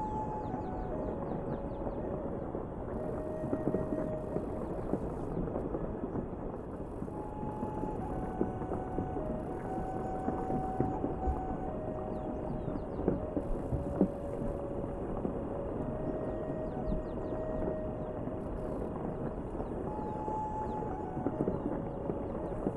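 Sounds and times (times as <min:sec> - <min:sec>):
light ocarina playing a slow gentle melody: 0:00.0 - 0:06.1, 0:07.0 - 0:22.7
dense country rain hissing: 0:00.0 - 0:22.7.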